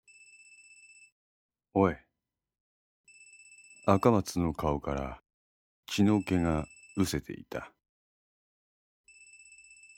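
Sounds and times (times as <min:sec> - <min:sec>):
mobile phone ringing: 0:00.0 - 0:01.2, 0:03.1 - 0:04.2, 0:05.9 - 0:07.2, 0:09.1 - 0:09.9
speech: 0:01.8 - 0:02.0, 0:03.9 - 0:05.2, 0:05.9 - 0:07.8.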